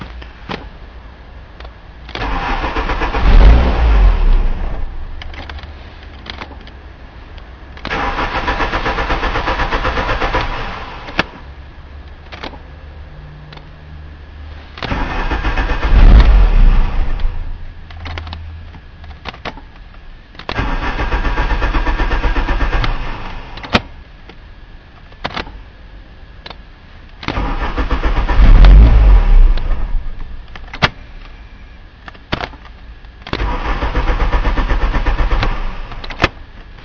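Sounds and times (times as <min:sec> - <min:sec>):
car engine cranking and revving: 0:01.6 - 0:11.4, 0:12.1 - 0:19.6, 0:20.4 - 0:23.9, 0:27.2 - 0:30.9, 0:33.2 - 0:36.8.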